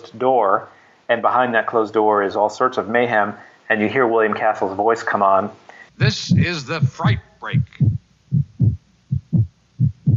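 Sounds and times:
speech: 0:00.1 - 0:08.0
frightened heart beating: 0:06.0 - 0:10.1.

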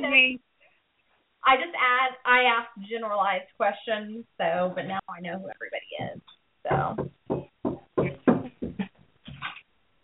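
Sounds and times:
speech: 0:00.0 - 0:00.5, 0:01.4 - 0:07.4
dull knocking on a door: 0:06.0 - 0:08.9.

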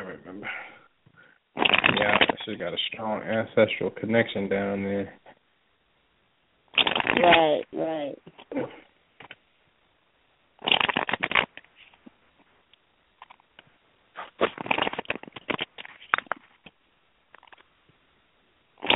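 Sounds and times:
tarot cards being shuffled: 0:01.6 - 0:02.4, 0:06.8 - 0:07.6, 0:10.6 - 0:12.1, 0:14.2 - 0:17.7
speech: 0:02.0 - 0:05.2, 0:07.2 - 0:08.8.

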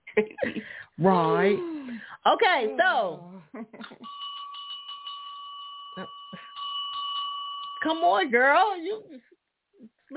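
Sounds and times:
speech: 0:00.2 - 0:04.1, 0:06.0 - 0:06.2, 0:07.8 - 0:09.3
bell ringing with a rapid trill: 0:04.0 - 0:09.1.

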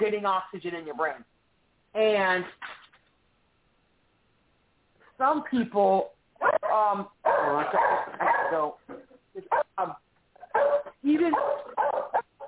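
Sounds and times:
speech: 0:00.0 - 0:02.8, 0:05.2 - 0:10.0, 0:10.6 - 0:12.2
dogs barking: 0:06.4 - 0:08.8, 0:09.4 - 0:09.8, 0:10.4 - 0:12.4.

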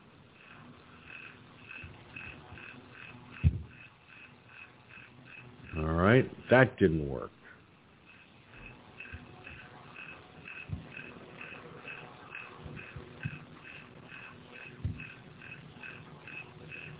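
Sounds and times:
fan chirping like a cricket: 0:00.0 - 0:16.9
soft low thumps: 0:03.4 - 0:03.8, 0:14.8 - 0:15.1
speech: 0:05.8 - 0:07.4.

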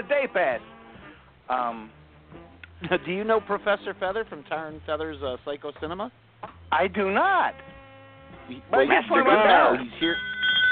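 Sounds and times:
speech: 0:00.0 - 0:00.8, 0:01.5 - 0:07.7, 0:08.5 - 0:10.3
bell ringing: 0:09.5 - 0:10.7.

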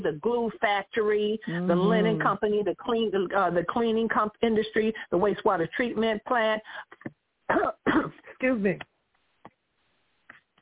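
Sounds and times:
speech: 0:00.0 - 0:08.9
faint throat sounds: 0:01.4 - 0:02.3
person coughing: 0:07.5 - 0:08.3.

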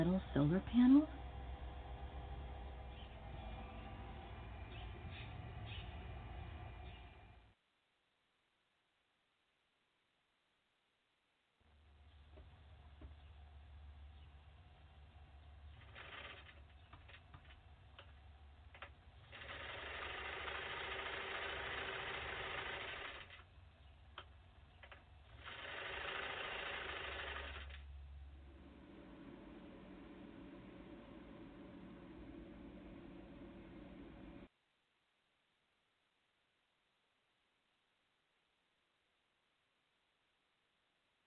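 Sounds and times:
speech: 0:00.0 - 0:01.2
low hum: 0:00.0 - 0:07.5, 0:11.7 - 0:25.5, 0:27.4 - 0:34.5
sewing machine whirring: 0:15.6 - 0:34.5.

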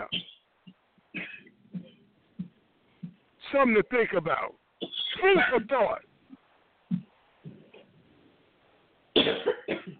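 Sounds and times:
dry coughing fit from allergies: 0:00.0 - 0:00.5, 0:01.1 - 0:02.1, 0:04.8 - 0:06.0, 0:09.2 - 0:09.9
speech: 0:03.5 - 0:04.6, 0:05.2 - 0:06.1.

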